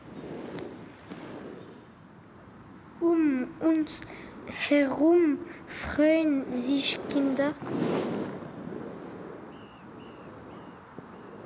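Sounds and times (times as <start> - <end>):
scooter, bicycle and roller skate wheels rolling over skatepark concrete: 0.0 - 2.8, 6.4 - 11.2
speech: 3.0 - 8.0.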